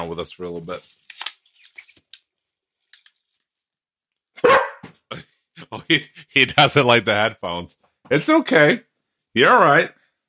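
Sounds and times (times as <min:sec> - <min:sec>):
speech: 0:00.0 - 0:01.2, 0:05.1 - 0:10.0
dog barking: 0:04.4 - 0:04.9.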